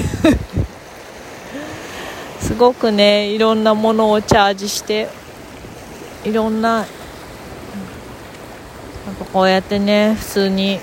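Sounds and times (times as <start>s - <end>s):
ocean surf at the shoreline: 0.0s - 10.8s
speech: 2.6s - 5.2s, 6.2s - 7.0s, 9.3s - 10.8s.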